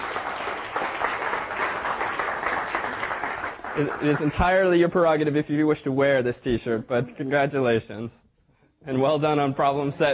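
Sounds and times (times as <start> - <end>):
crowd applauding with dense continuous clapping: 0.0 - 5.3
speech: 3.8 - 8.2, 8.8 - 10.1.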